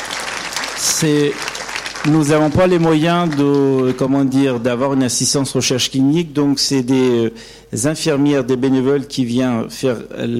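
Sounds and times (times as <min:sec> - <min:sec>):
audience applause at an event honouring helpers and volunteers: 0:00.0 - 0:05.0
speech: 0:00.8 - 0:10.3.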